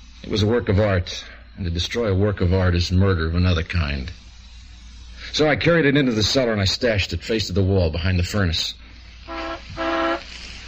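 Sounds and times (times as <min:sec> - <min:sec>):
speech: 0:00.2 - 0:04.2, 0:05.3 - 0:08.8
school bus horn honking: 0:09.3 - 0:10.3.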